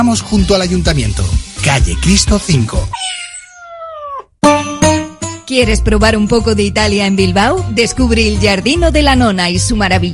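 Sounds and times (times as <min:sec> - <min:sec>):
speech: 0:00.0 - 0:03.2, 0:05.5 - 0:10.1
cat meowing: 0:01.7 - 0:02.3, 0:02.9 - 0:04.3.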